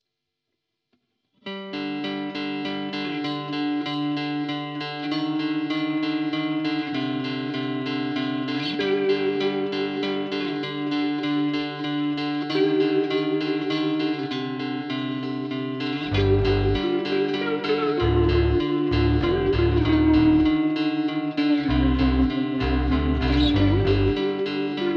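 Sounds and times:
instrumental music: 0:01.5 - 0:24.9.

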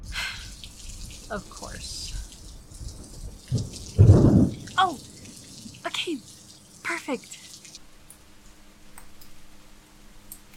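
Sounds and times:
low thunder rumbling: 0:00.0 - 0:06.8
faint hiss of rain: 0:00.0 - 0:08.6
speech: 0:01.3 - 0:02.2, 0:07.1 - 0:07.3.

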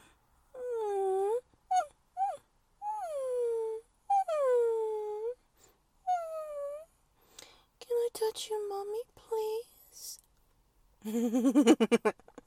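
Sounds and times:
human voice imitating puppy whimpers: 0:00.6 - 0:05.4, 0:06.0 - 0:07.0
speech: 0:08.3 - 0:09.1, 0:11.0 - 0:12.2.

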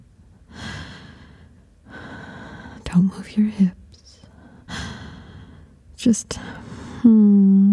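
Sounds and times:
heavy breathing catching breath after exertion: 0:00.5 - 0:02.8, 0:04.3 - 0:05.7
speech: 0:03.0 - 0:03.8, 0:06.0 - 0:07.7.

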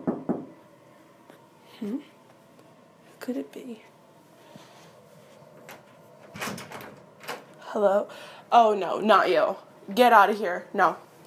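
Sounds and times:
low hum: 0:00.0 - 0:11.2
speech: 0:01.8 - 0:02.2, 0:03.2 - 0:04.0, 0:07.7 - 0:11.1
clunk and rattle: 0:05.6 - 0:07.5
wooden door opening with a creak: 0:05.6 - 0:07.6.

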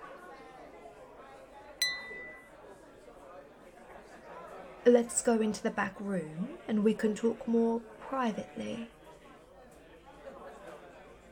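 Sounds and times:
murmur of indistinct crowd chatter in a bar: 0:00.0 - 0:11.3
champagne glasses clinking in a toast in a bar: 0:01.8 - 0:02.5
speech: 0:04.9 - 0:09.0.

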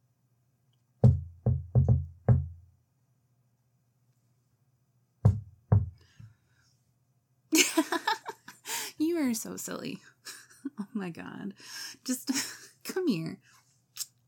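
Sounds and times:
sharp knocks on a door: 0:01.0 - 0:02.6, 0:05.2 - 0:06.0
speech: 0:09.2 - 0:13.5.

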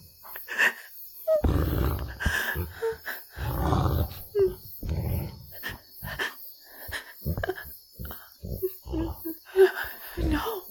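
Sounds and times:
wolf growling and snarling: 0:01.3 - 0:06.2, 0:07.2 - 0:10.6.

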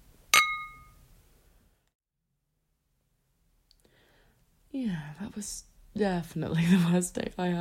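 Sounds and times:
glasses clinking in a toast: 0:00.4 - 0:01.0
speech: 0:04.8 - 0:07.6.

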